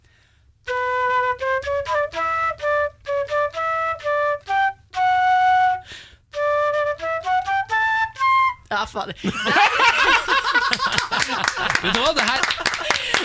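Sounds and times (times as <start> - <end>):
flute playing a halting melody: 0.6 - 8.7
speech: 8.9 - 12.7
laughter: 9.2 - 13.2.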